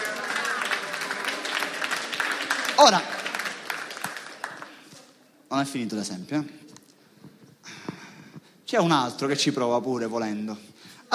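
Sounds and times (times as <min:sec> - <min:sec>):
audience applause: 0:00.0 - 0:04.9
speech: 0:02.8 - 0:03.1, 0:05.5 - 0:06.6, 0:08.7 - 0:11.1.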